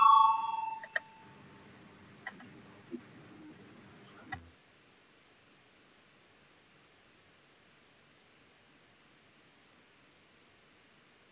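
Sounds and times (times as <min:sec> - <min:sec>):
parliament voting bell electronic tone: 0:00.0 - 0:01.4.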